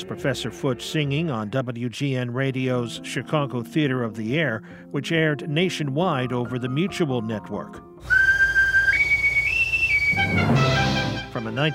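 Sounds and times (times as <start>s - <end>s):
speech: 0.0s - 8.2s, 11.4s - 11.7s
small boy blowing an Oscar Mayer wiener whistle: 8.0s - 11.2s.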